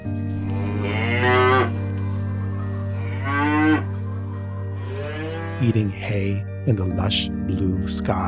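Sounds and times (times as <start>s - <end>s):
dairy cow mooing: 0.4s - 2.1s, 2.7s - 4.1s, 4.8s - 5.9s
speech: 5.6s - 8.2s.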